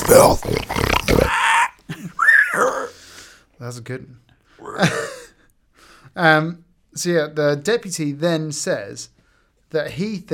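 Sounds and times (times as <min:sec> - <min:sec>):
pig squealing and grunting: 0:00.0 - 0:03.0, 0:04.6 - 0:05.1
speech: 0:03.7 - 0:05.2, 0:06.2 - 0:10.3.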